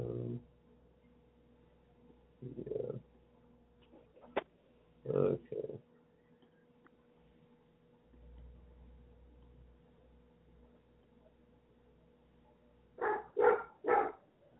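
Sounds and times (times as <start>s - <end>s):
quiet low hum: 0.0s - 14.5s
Golden Retriever Australian Shepherd mix dog barking at birds: 13.0s - 14.3s.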